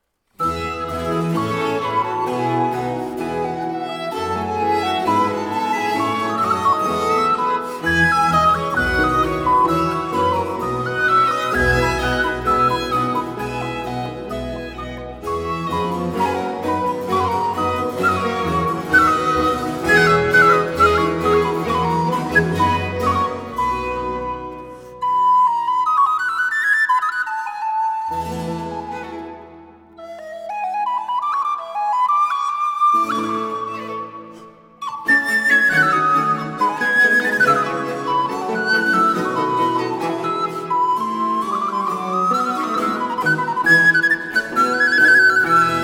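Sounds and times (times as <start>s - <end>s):
recorder concerto: 0.3s - 45.8s.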